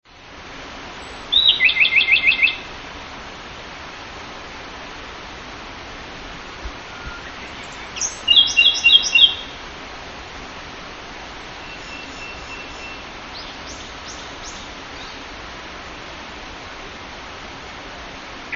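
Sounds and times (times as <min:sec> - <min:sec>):
hontouakahige call: 0:01.0 - 0:02.7, 0:06.7 - 0:09.5, 0:11.4 - 0:15.2.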